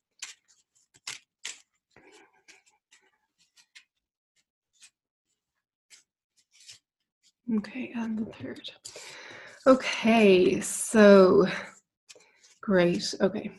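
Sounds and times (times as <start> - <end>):
small tarot cards being handled and shuffled: 0.0 - 7.4
speech: 7.5 - 9.0, 9.6 - 11.7, 12.7 - 13.5.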